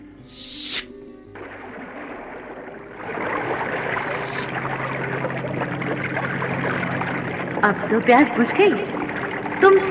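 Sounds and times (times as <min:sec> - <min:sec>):
airy whoosh: 0:00.2 - 0:01.0
stream of water gushing from the ground: 0:00.3 - 0:09.9
speech: 0:07.6 - 0:09.0, 0:09.8 - 0:09.9.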